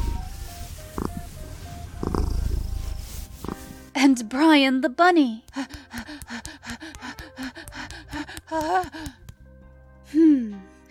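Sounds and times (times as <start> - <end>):
cat purring: 0.2 - 3.8
speech: 4.1 - 6.0, 8.6 - 9.2.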